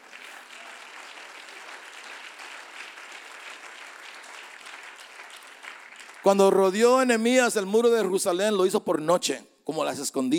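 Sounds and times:
church audience applause: 0:00.0 - 0:06.6
speech: 0:06.2 - 0:10.3.

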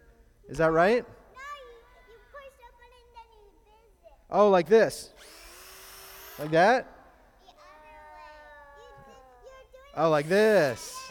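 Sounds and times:
speech: 0:00.5 - 0:01.2, 0:04.3 - 0:05.4, 0:06.4 - 0:06.9, 0:10.0 - 0:11.0
power drill driving screws: 0:05.2 - 0:07.1, 0:10.0 - 0:11.0.

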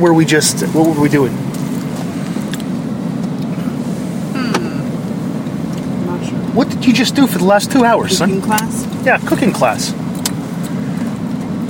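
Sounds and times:
speech: 0:00.0 - 0:01.6, 0:06.6 - 0:10.0
road and engine noise inside a moving car: 0:00.0 - 0:11.6.

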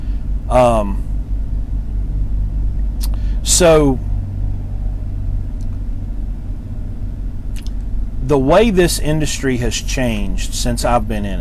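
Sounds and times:
vehicle engines idling at a truck stop in Valley Grove, West Virginia: 0:00.0 - 0:11.3
speech: 0:00.5 - 0:01.0, 0:03.5 - 0:04.1, 0:08.3 - 0:11.3.

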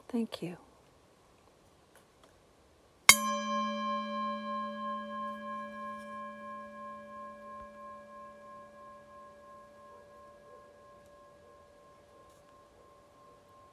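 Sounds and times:
speech: 0:00.1 - 0:00.6
meditation chime struck and ringing: 0:03.1 - 0:13.7.

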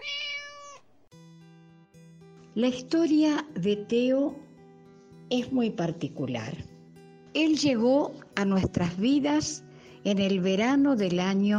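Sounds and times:
cat meowing: 0:00.0 - 0:00.9
speech: 0:02.6 - 0:04.4, 0:05.3 - 0:06.7, 0:07.4 - 0:11.5.

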